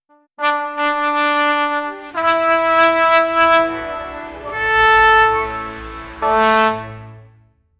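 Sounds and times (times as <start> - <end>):
medieval instrumental music: 1.3 - 7.3.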